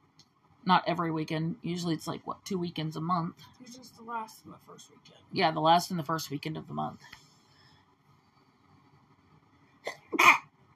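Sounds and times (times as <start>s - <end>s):
quiet hum: 0.0s - 10.7s
speech: 0.7s - 7.2s
loud sneeze: 9.9s - 10.5s.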